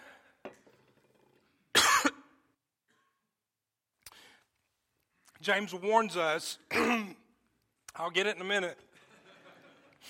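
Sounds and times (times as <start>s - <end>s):
harsh cough from a tickle in the throat: 1.7s - 3.1s, 6.7s - 7.3s
speech: 5.4s - 7.2s, 8.0s - 8.9s
laughter: 8.9s - 10.0s.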